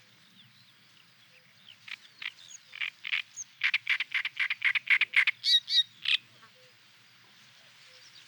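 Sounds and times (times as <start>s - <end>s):
faint low background noise: 0.0s - 8.2s
great reed warbler singing rasping frog-like croaks: 0.0s - 8.2s.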